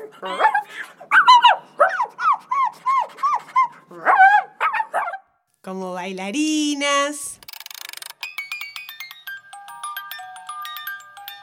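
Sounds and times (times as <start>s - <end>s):
dog yipping and whimpering: 0.0s - 5.2s
speech: 0.1s - 1.0s, 5.7s - 7.3s.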